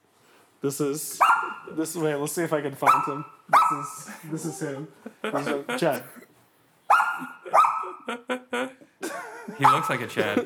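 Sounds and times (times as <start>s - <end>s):
speech: 0.6s - 6.2s, 9.6s - 10.4s
dog barking loudly: 1.2s - 1.8s, 2.8s - 4.0s, 6.9s - 8.1s, 9.6s - 10.0s
laughter: 3.8s - 6.2s, 7.2s - 10.4s.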